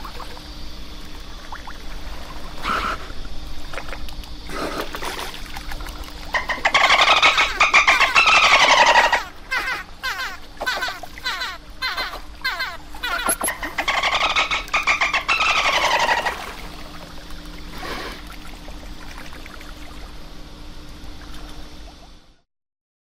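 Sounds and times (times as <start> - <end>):
steady low hum: 0.0 - 22.4
dolphin rapid click trains: 3.7 - 18.4
dolphin pulsed squealing whistles: 6.3 - 16.8.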